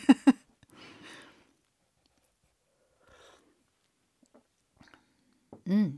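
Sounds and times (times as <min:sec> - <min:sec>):
slurping sip of hot tea: 0:02.8 - 0:03.7.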